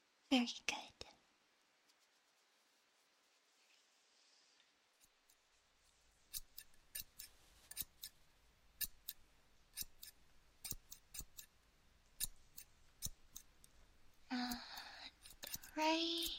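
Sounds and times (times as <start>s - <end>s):
soft hiss: 0.0s - 16.3s
speech: 0.3s - 1.0s
scissors cutting hair: 6.3s - 8.2s, 8.8s - 11.5s, 12.1s - 16.3s.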